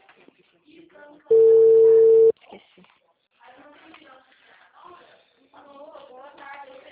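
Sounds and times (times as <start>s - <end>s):
ringback tone on an outgoing phone call: 1.3s - 2.3s.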